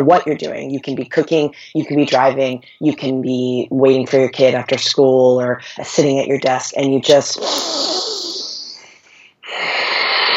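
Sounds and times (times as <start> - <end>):
speech: 0.0 - 8.3
deep breath drawn into the body: 8.7 - 10.3.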